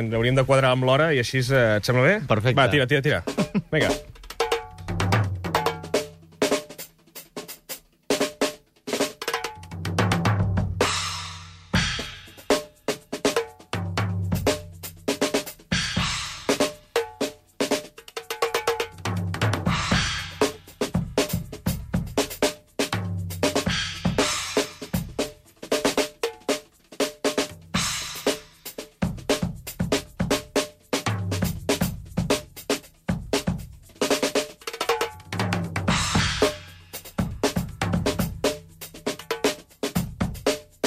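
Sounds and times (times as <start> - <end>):
speech: 0.0 - 4.1
drum kit played solo with kick, snare, cymbal and cowbell-like accents: 0.0 - 40.8.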